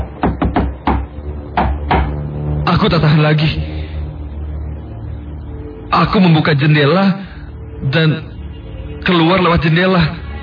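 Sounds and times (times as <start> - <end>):
firm knocks on a wooden bedroom door: 0.0 - 2.2
speech: 2.8 - 3.7, 5.9 - 8.3, 9.0 - 10.2.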